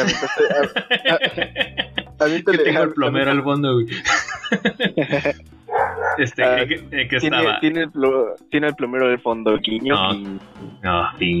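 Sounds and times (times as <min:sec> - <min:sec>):
laughter: 0:00.0 - 0:05.4, 0:06.0 - 0:08.1, 0:09.2 - 0:10.4
speech: 0:00.0 - 0:11.3
dog barking and yelping: 0:05.7 - 0:06.3.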